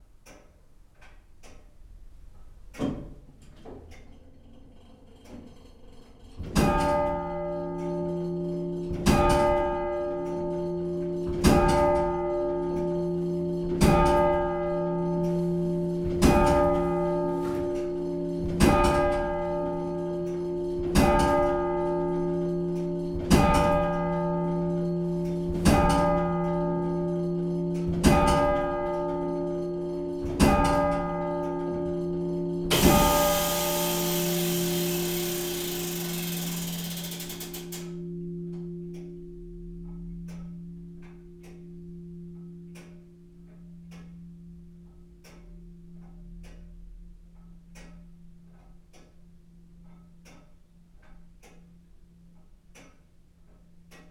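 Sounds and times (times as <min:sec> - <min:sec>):
church clock mechanism at midday in Heckington UK: 0:00.0 - 0:54.0.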